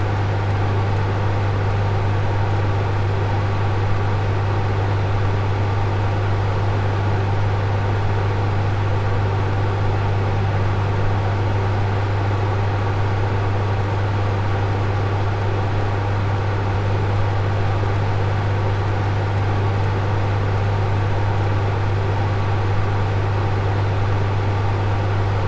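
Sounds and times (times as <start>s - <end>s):
ventilation machine drone with low hum and airy rush: 0.0s - 25.4s.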